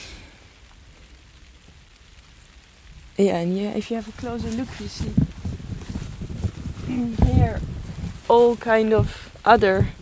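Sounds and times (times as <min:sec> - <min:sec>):
steady rain falling outdoors: 0:00.0 - 0:09.9
speech: 0:03.2 - 0:05.3, 0:07.0 - 0:09.9
low rumble: 0:04.1 - 0:09.9.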